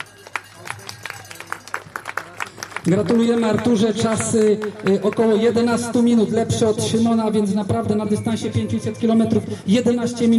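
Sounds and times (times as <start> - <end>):
scattered hand clapping for a second-place race finisher: 0.0 - 5.7
speech: 2.8 - 10.3.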